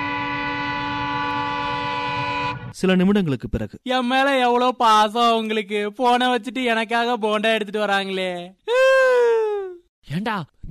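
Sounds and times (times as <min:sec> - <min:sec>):
approaching train horn: 0:00.0 - 0:02.8
speech: 0:02.8 - 0:09.1, 0:10.0 - 0:10.6.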